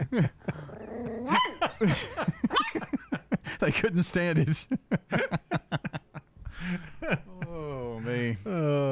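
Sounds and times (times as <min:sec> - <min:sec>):
laughter: 0:00.0 - 0:08.8
speech: 0:00.1 - 0:00.4, 0:01.8 - 0:02.2, 0:03.6 - 0:05.2
dogs growling: 0:00.4 - 0:01.7
dogs whining yelps: 0:00.7 - 0:01.8
dogs barking: 0:01.1 - 0:01.8.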